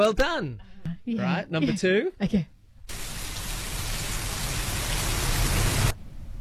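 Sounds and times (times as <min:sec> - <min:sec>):
speech: 0:00.0 - 0:02.6
steady dense rain hissing: 0:02.9 - 0:06.3.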